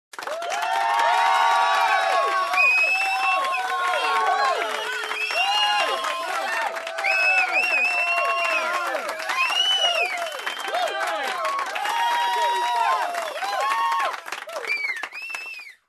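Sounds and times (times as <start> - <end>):
group applauding: 0.1 - 15.8
group whistling: 2.5 - 6.3, 7.0 - 10.9, 14.6 - 15.8.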